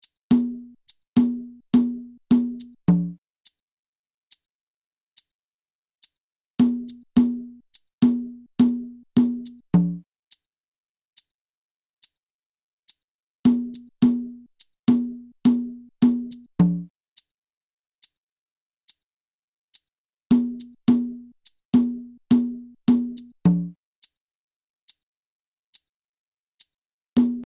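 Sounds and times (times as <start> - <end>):
slow guarapachangueo rhythm on cajon: 0.3 - 3.2, 6.6 - 10.0, 13.5 - 16.9, 20.3 - 23.8, 27.2 - 27.4.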